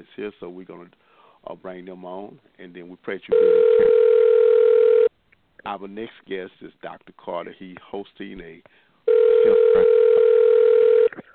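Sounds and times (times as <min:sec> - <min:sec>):
speech: 0:00.0 - 0:04.2, 0:05.6 - 0:08.8, 0:09.4 - 0:10.1
telephone line tone on a forwarded call: 0:03.3 - 0:05.1, 0:09.1 - 0:11.1.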